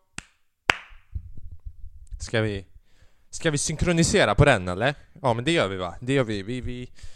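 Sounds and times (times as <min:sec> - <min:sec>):
sharp hand claps: 0:00.0 - 0:01.0
speech: 0:02.2 - 0:02.7, 0:03.3 - 0:07.1.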